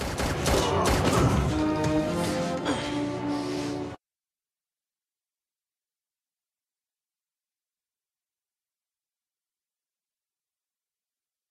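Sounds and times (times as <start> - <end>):
rapid gunfire in a dramatic shootout: 0.0 - 1.4
sustained musical tones: 1.2 - 4.0.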